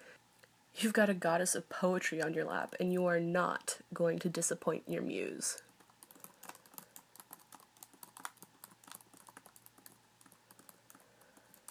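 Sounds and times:
speech: 0.8 - 5.7
touch typing on a computer keyboard: 5.8 - 11.7.

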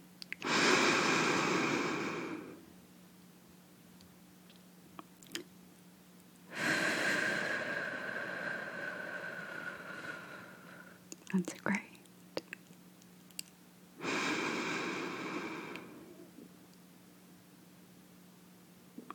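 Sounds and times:
deep breathing in: 0.4 - 2.6, 6.5 - 11.0, 14.0 - 16.4
speech: 11.3 - 11.8.

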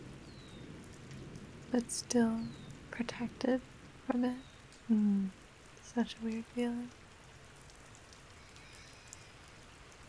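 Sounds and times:
light rain pattering: 0.0 - 10.0
speech: 1.7 - 7.0.

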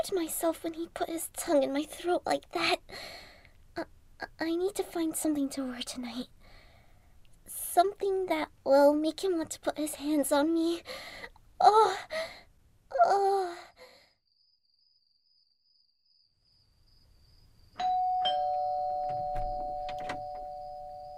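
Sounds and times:
speech: 0.0 - 6.4, 7.8 - 13.7
doorbell ringing with a steady electronic tone: 17.8 - 21.1.

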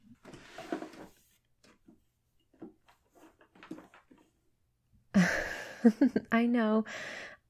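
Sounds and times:
underwear clattering and rustling in a drawer: 0.0 - 4.4
drawer scraping slide: 0.1 - 1.4
speech: 5.8 - 7.3.

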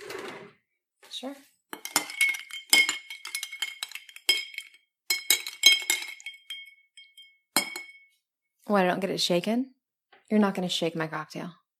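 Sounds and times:
speech: 1.2 - 1.5, 8.7 - 11.6
spoon stirring a cocktail in a glass: 1.7 - 8.2.

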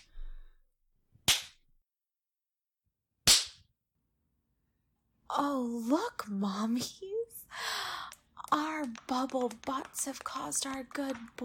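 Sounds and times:
hand slapping bare skin: 1.2 - 1.6, 3.3 - 3.7, 7.7 - 11.4
speech: 5.3 - 7.9, 8.5 - 11.4.

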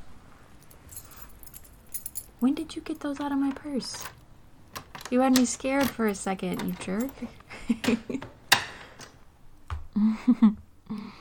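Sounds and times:
keys jingling: 0.5 - 8.2
speech: 2.4 - 4.2, 5.1 - 8.3, 10.0 - 11.2.

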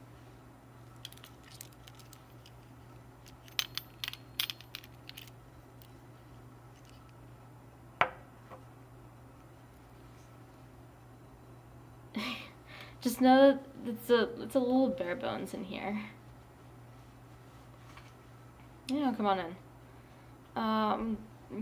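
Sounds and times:
keys jingling and clicking: 1.0 - 5.4
speech: 13.0 - 16.2, 18.9 - 19.6, 20.6 - 21.6.

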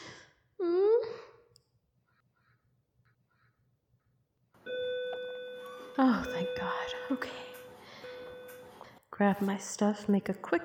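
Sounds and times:
loud steady bell ringing: 4.7 - 8.8
speech: 6.0 - 7.6, 9.2 - 10.6.

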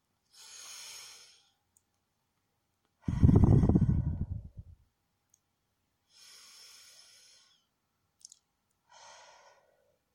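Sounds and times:
slow breathing during a cool-down after a gym workout: 0.3 - 1.6, 3.0 - 4.8, 6.1 - 7.8, 8.8 - 10.0.

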